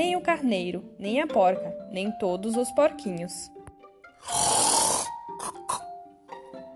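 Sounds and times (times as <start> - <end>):
speech: 0.0 - 3.6, 4.2 - 4.5
loud rasping snore: 4.2 - 5.9.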